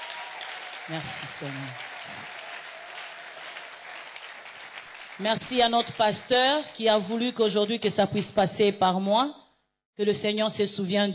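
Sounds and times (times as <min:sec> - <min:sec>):
church congregation applauding: 0:00.0 - 0:07.0
speech: 0:00.9 - 0:02.5, 0:05.2 - 0:09.4, 0:10.0 - 0:11.1.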